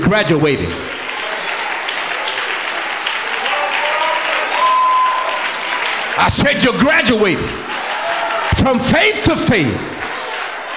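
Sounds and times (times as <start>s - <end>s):
speech: 0.1s - 1.0s, 6.2s - 7.7s, 8.6s - 9.9s
congregation clapping hands in applause: 0.2s - 10.7s
faint tonal whistle or voice: 4.6s - 5.4s.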